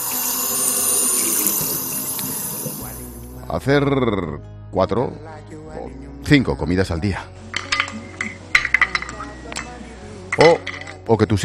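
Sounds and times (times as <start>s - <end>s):
water pouring from a tap into a sink: 0.0s - 3.2s
speech: 3.5s - 7.5s, 10.4s - 11.4s.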